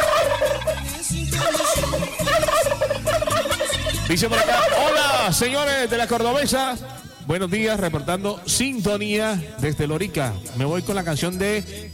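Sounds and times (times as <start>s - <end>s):
turkey gobbling: 0.0s - 7.2s
rhythmic music with steady thumping beat and repeated bass notes: 0.0s - 11.9s
speech: 4.1s - 4.7s, 5.3s - 11.9s.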